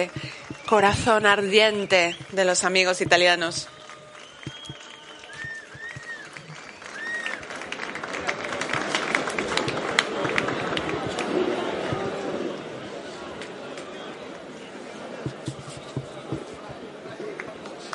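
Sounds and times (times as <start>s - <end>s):
speech: 0.0s - 3.8s
cheers: 0.0s - 14.4s
crowd applauding for arriving guests: 0.0s - 17.9s
whistles: 0.2s - 2.4s, 3.6s - 7.5s.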